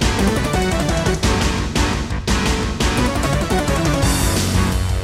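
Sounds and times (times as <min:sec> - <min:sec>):
music intro on a Roland SC-88 Pro sound module: 0:00.2 - 0:01.6, 0:02.9 - 0:04.9.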